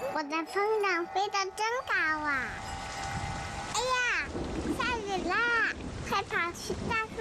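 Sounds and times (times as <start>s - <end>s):
speech: 0.2s - 2.7s, 6.1s - 7.1s
rain falling: 1.5s - 7.1s.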